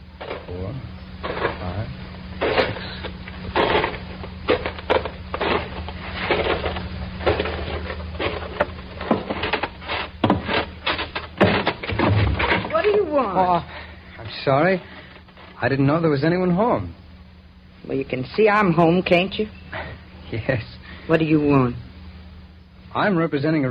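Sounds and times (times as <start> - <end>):
low steady hum: 0.0 - 23.7
speech: 0.5 - 1.3, 13.4 - 13.8, 14.4 - 15.0, 15.6 - 17.0, 17.8 - 19.6, 20.3 - 21.8, 22.9 - 23.7
footsteps on wooden farmhouse porch stairs: 2.4 - 13.5.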